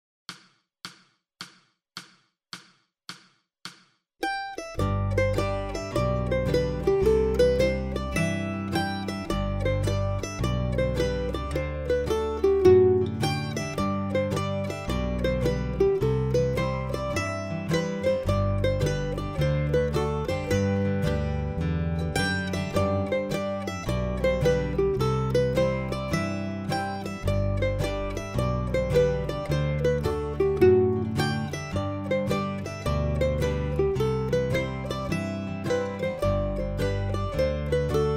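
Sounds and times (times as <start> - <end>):
slow mandolin harmony: 4.2 - 38.1.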